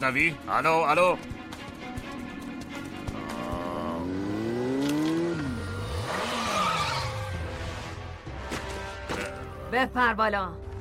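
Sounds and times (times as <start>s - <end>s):
speech: 0.0s - 1.4s, 9.7s - 10.6s
roaring car engine: 2.6s - 8.2s
car tires squealing as the car skids: 5.4s - 7.4s.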